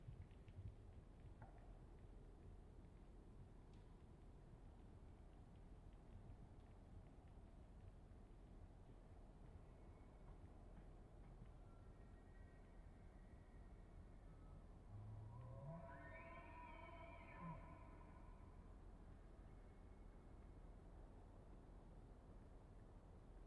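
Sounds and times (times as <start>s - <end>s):
low rumbling background noise: 0.0s - 23.4s
bull elk bugling: 15.3s - 18.5s.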